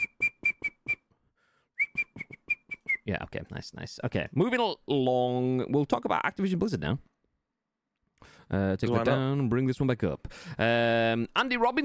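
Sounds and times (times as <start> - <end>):
whistle blown in short sharp blasts: 0.0 - 1.1, 1.8 - 3.1
speech: 3.1 - 7.1, 8.5 - 11.8.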